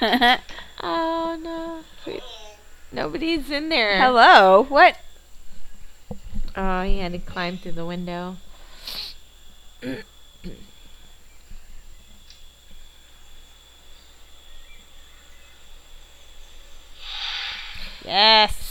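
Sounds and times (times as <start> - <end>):
speech: 0.0 - 2.3, 2.9 - 5.0, 6.6 - 9.0, 9.8 - 10.7, 18.1 - 18.6
cat hissing: 8.6 - 9.2, 17.0 - 18.1.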